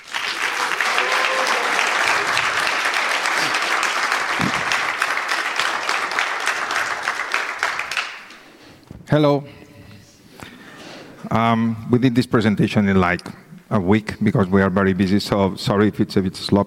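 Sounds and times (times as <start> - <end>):
audience applause: 0.0 - 8.4
speech: 9.1 - 9.6, 11.3 - 16.6.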